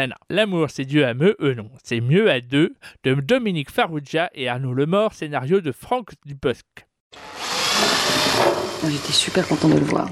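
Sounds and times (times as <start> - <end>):
speech: 0.0 - 10.0
electric drill whirring: 7.1 - 9.4.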